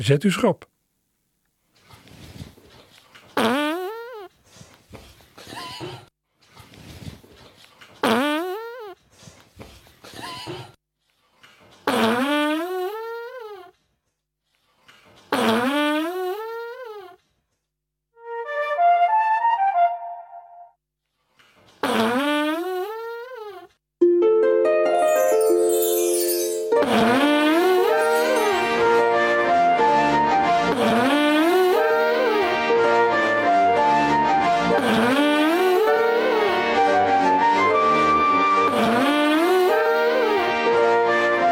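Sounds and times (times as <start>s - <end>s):
speech: 0.0s - 0.7s
recorded farts set to music: 3.4s - 4.3s, 8.0s - 9.0s, 11.8s - 13.7s, 15.2s - 17.2s, 21.8s - 23.7s, 34.8s - 35.9s
flute pitch of farts: 18.2s - 20.7s, 27.8s - 34.8s, 35.6s - 41.4s
quick plucked harp notes: 24.0s - 27.1s.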